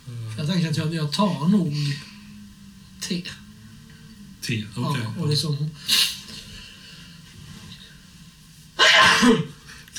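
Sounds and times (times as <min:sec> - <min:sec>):
faint humming background: 0:00.0 - 0:09.9
speech: 0:00.4 - 0:02.1, 0:03.1 - 0:03.4, 0:04.5 - 0:06.1, 0:09.2 - 0:09.5
person blowing nose: 0:05.9 - 0:06.3.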